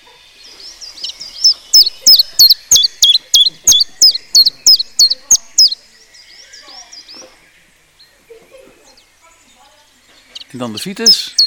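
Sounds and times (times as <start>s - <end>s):
common chiffchaff song: 0.0s - 11.4s
soft high chirps: 0.8s - 7.1s, 10.2s - 11.4s
speech: 10.6s - 11.4s.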